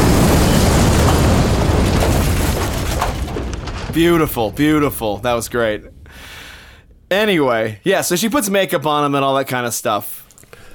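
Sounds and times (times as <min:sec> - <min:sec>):
explosion sound effect with deep roaring rumble: 0:00.0 - 0:07.7
speech: 0:04.0 - 0:06.4, 0:07.1 - 0:10.7.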